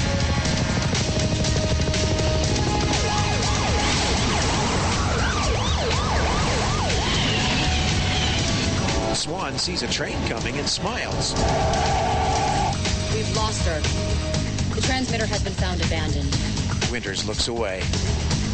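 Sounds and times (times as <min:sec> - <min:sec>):
police car sirens wailing during a chase: 0:00.0 - 0:13.6
traffic roar: 0:00.0 - 0:15.6
speech: 0:09.6 - 0:12.2, 0:13.5 - 0:14.2, 0:14.8 - 0:18.2.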